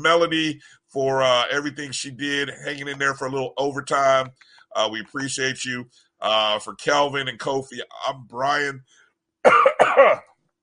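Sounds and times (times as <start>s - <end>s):
speech: 0.0s - 10.3s
harsh throaty coughs: 9.4s - 10.3s.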